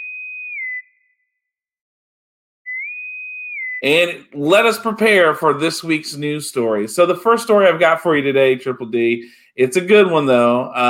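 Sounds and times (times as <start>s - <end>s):
bosun's whistle piping: 0.0s - 1.3s, 2.7s - 3.8s
speech: 3.8s - 10.8s.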